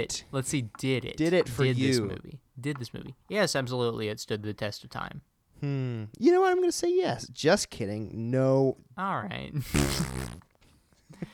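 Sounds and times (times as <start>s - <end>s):
speech: 0.0s - 10.5s
raspberry blown with the lips imitating a fart: 9.6s - 10.6s.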